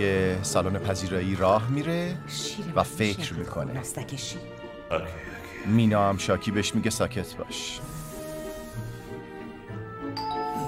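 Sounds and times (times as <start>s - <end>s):
speech: 0.0s - 8.0s
doorbell chiming: 10.2s - 10.6s.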